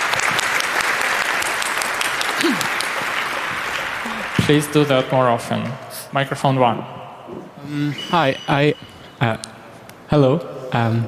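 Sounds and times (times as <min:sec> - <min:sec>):
crowd clapping: 0:00.0 - 0:05.1
speech: 0:04.5 - 0:07.0, 0:07.6 - 0:09.5, 0:10.1 - 0:11.0.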